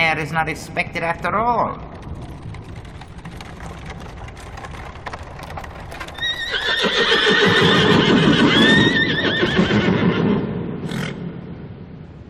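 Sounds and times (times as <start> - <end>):
speech: 0.2 - 1.9, 6.9 - 8.0
carriage horse hooves clip-clopping on hard ground in the Borgo Pass: 1.0 - 8.9
rustling: 1.6 - 7.3
four carriage horses of a calèche neighing: 5.9 - 11.2.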